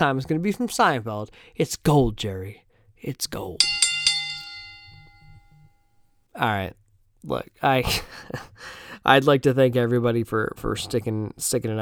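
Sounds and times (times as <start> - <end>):
speech: 0.0 - 3.8, 6.4 - 11.8
single bell struck once: 3.6 - 5.7.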